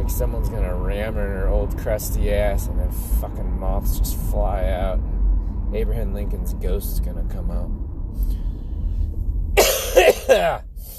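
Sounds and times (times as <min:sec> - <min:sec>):
low rumble: 0:00.0 - 0:10.9
speech: 0:00.1 - 0:08.4, 0:10.3 - 0:10.9
wet rattling cough with phlegm: 0:09.6 - 0:10.6.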